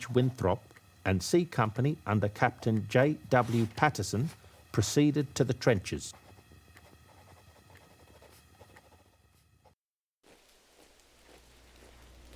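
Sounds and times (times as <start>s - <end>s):
speech: 0.0s - 6.2s
freezing rain and sleet pelting down: 10.2s - 12.3s.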